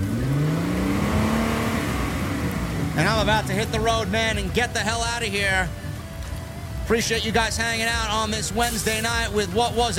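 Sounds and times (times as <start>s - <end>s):
Ford Mustang car engine revving with a deep growl: 0.0s - 6.8s
speech: 3.0s - 5.8s, 6.9s - 9.9s.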